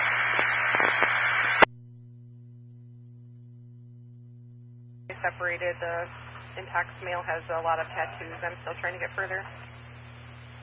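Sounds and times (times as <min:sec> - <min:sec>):
radio static hiss with crackling bursts: 0:00.0 - 0:01.7, 0:05.1 - 0:10.6
low hum: 0:00.0 - 0:10.6
speech: 0:05.3 - 0:09.7.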